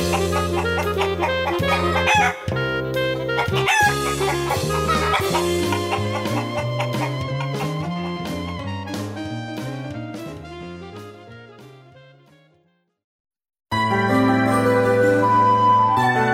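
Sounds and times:
hens clucking: 0:00.0 - 0:02.5, 0:03.3 - 0:08.7
bright jingle-like musical backing: 0:00.0 - 0:12.4, 0:13.7 - 0:16.3
rooster crowing: 0:00.7 - 0:02.4, 0:03.4 - 0:06.2.

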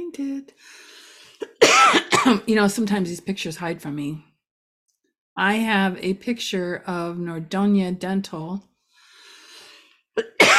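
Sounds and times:
speech: 0:00.1 - 0:01.5, 0:02.2 - 0:04.3, 0:05.4 - 0:08.7, 0:10.2 - 0:10.5
person coughing harshly: 0:01.4 - 0:02.4, 0:10.2 - 0:10.5.

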